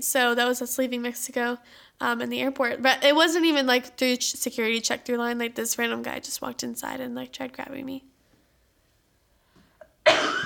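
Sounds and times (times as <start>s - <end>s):
speech: 0.0s - 8.1s
intake of breath: 1.6s - 2.0s
person coughing: 10.0s - 10.4s.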